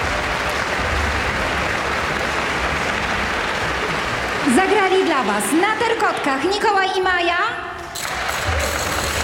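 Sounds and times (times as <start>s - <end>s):
crowd applauding: 0.0s - 6.7s, 8.0s - 9.2s
speech: 4.5s - 8.1s.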